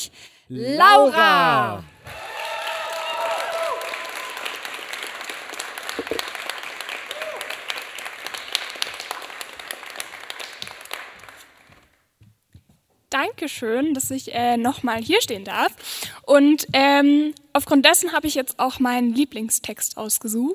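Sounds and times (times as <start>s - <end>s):
speech: 0.0s - 1.9s, 13.4s - 20.5s
cheers and whoops: 0.8s - 5.1s, 6.8s - 7.8s
crowd applauding a performer: 0.8s - 11.8s.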